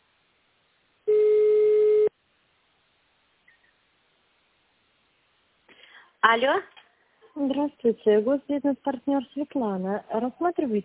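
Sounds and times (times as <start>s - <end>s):
telephone line tone while waiting for a company secretary to answer: 1.1s - 2.1s
speech: 6.2s - 6.8s, 7.4s - 10.8s.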